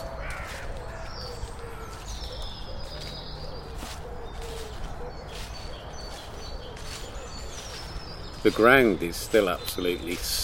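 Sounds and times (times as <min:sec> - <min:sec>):
crows cawing: 0:00.0 - 0:07.9
speech: 0:08.4 - 0:10.4.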